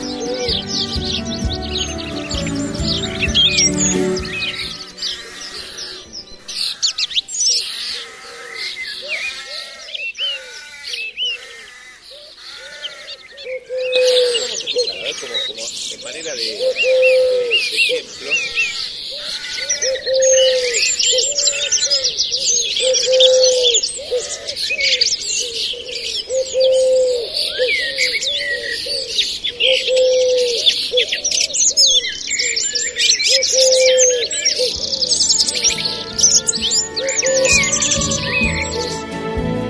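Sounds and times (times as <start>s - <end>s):
birds chirping and trilling: 0.0s - 39.5s
low repeated coos: 12.6s - 15.6s, 16.6s - 22.0s, 22.8s - 31.7s, 33.3s - 34.9s.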